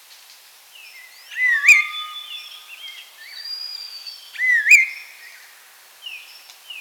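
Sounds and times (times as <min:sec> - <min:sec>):
chestnut-crowned laughingthrush wavering whistled calls: 0:01.2 - 0:05.5.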